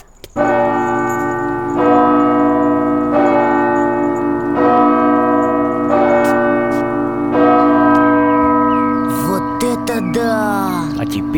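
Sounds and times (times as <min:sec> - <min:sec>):
large church bells rung by foot pedals: 0:00.4 - 0:11.3
higher-pitched sounds: 0:09.1 - 0:11.3.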